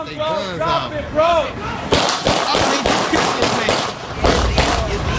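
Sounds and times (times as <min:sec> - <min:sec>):
speech: 0:00.0 - 0:01.8
rapid volley of loud police gunshots: 0:01.9 - 0:05.0.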